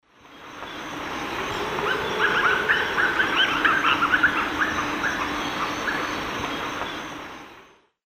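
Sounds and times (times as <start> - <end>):
Lurocalis semitorquatus calls in South America Eastern Lowlands: 0.7 - 7.1.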